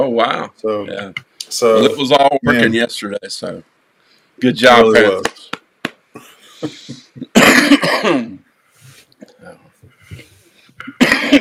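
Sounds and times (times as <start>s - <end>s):
speech: 0.0s - 3.8s, 4.4s - 5.6s, 6.6s - 8.4s
person coughing in a coughing fit: 6.6s - 8.4s, 10.8s - 11.4s.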